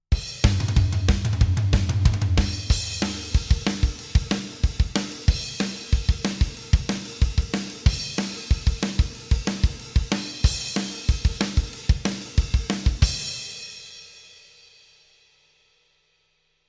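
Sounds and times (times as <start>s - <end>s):
wet drum with reverb: 0.1s - 14.6s.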